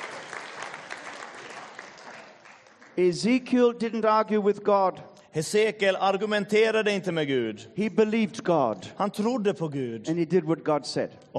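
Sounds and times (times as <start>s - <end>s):
church congregation applauding: 0.0s - 3.5s
speech: 3.0s - 11.3s.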